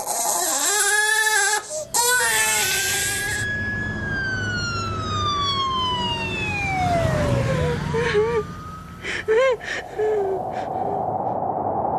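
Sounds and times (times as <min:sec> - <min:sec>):
crying: 0:00.0 - 0:03.4
traffic noise: 0:01.6 - 0:11.8
emergency siren wailing: 0:02.0 - 0:10.5.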